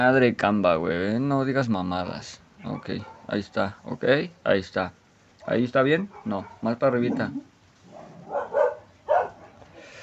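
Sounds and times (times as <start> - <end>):
speech: 0.0 - 7.5
dogs barking: 2.6 - 3.6, 5.4 - 9.9.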